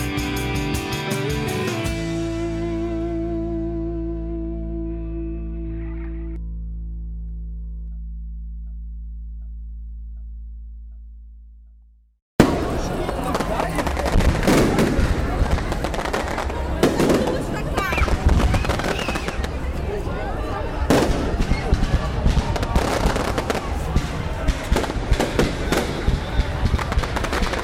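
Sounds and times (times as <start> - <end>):
crowd voices: 0.0 - 6.4, 12.4 - 27.6
fireworks launching and bursting: 12.4 - 19.6, 20.9 - 27.6.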